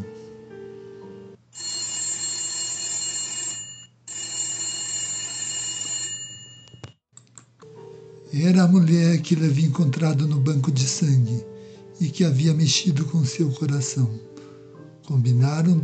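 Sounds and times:
old-style telephone bell ringing loudly: 1.6s - 7.0s
speech: 8.3s - 14.4s, 15.1s - 15.8s.

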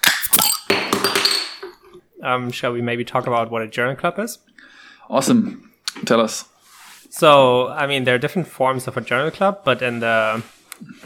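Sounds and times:
glass beer bottles clinking together in a toast: 0.0s - 2.0s
speech: 2.2s - 6.5s, 7.1s - 11.0s.

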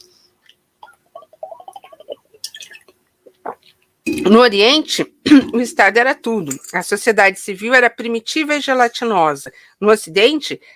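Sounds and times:
person sipping water: 0.4s - 4.3s
gulping water: 0.8s - 4.3s
speech: 4.1s - 10.7s.

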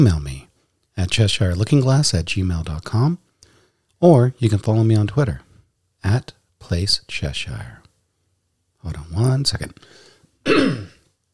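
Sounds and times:
speech: 0.0s - 0.3s, 1.0s - 3.2s, 4.0s - 5.4s, 6.0s - 7.8s, 8.8s - 10.9s
throat clearing: 10.5s - 11.1s.

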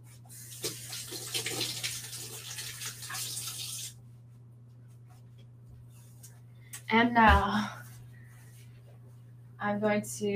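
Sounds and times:
low constant hum: 0.0s - 10.3s
hands being washed under a running kitchen tap, splashing and rubbing: 0.3s - 4.0s
running kitchen tap water stream: 0.3s - 4.0s
speech: 6.9s - 7.8s, 9.7s - 10.3s.

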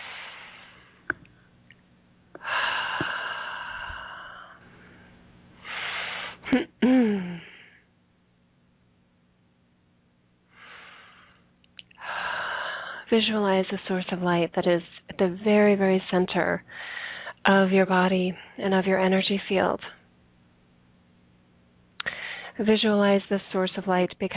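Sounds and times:
slow deep breathing in through nose and out through mouth: 0.0s - 1.1s, 2.4s - 6.4s, 10.5s - 13.1s, 16.7s - 17.4s, 22.0s - 22.6s
speech: 13.1s - 20.0s, 22.6s - 24.3s.

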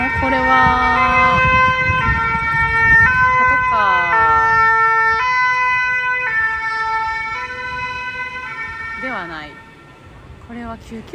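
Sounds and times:
vehicle two-tone siren passing along the street: 0.0s - 10.4s
low rumble of traffic: 0.0s - 11.1s
speech: 10.8s - 11.1s.

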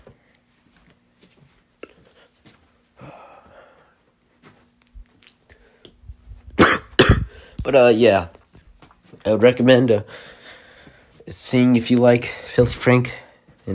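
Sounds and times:
throat clearing: 6.6s - 7.4s
person coughing: 6.6s - 7.5s
speech: 7.6s - 8.4s, 9.2s - 10.2s, 11.3s - 13.7s.

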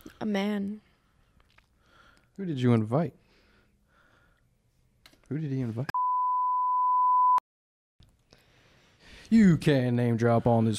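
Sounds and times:
speech: 0.2s - 0.9s, 2.4s - 3.2s, 5.3s - 6.0s, 9.3s - 10.7s
high-pitched censor bleep: 5.9s - 7.4s.

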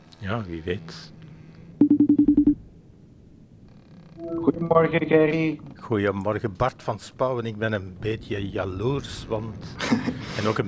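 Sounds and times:
speech: 0.2s - 1.2s, 4.3s - 10.6s
telephone dialing tones for placing a call: 1.8s - 2.6s
laughter: 4.3s - 10.6s.

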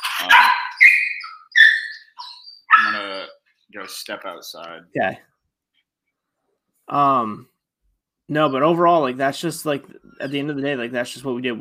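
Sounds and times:
dogs barking with a high yelping tone: 0.0s - 3.3s
speech: 0.2s - 0.6s, 3.7s - 5.3s, 6.9s - 7.5s, 8.3s - 11.5s.

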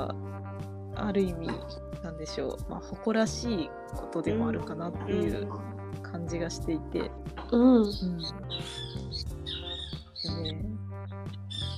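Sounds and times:
speech: 0.0s - 0.3s, 1.0s - 9.3s, 10.2s - 10.8s
bird squawking: 7.9s - 11.7s.

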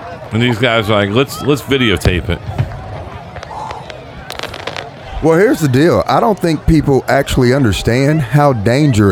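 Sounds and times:
faint indistinct voices: 0.0s - 9.1s
speech: 0.3s - 2.6s, 5.2s - 9.1s
firework pops and crackles from a burning tent of fireworks: 2.0s - 5.3s.

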